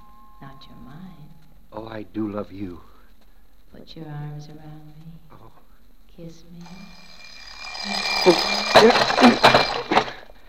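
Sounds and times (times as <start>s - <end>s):
speech: 0.6s - 2.9s, 3.7s - 5.6s, 6.2s - 7.2s, 7.8s - 9.9s
alarm clock ringing: 6.6s - 10.3s.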